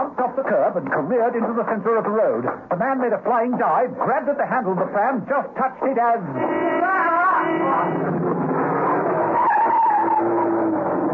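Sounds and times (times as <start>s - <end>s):
speech: 0.4s - 8.3s
van tyres squealing skidding on a wet road: 6.3s - 11.1s.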